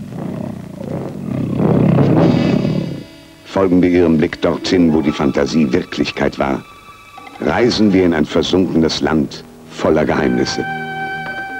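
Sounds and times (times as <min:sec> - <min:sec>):
deep rumbling tiger roar in a film trailer: 0:00.0 - 0:03.1
speech: 0:03.6 - 0:06.7, 0:07.4 - 0:10.9.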